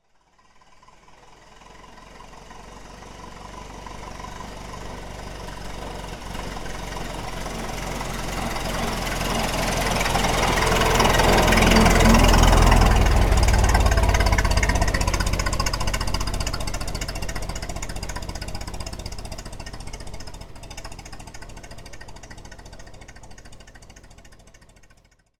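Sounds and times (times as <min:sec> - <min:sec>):
Ford Model T car passing by: 0:00.2 - 0:25.3.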